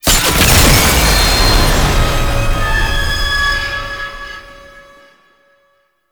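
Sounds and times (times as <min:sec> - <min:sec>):
tank kill shot: 0:00.0 - 0:04.2.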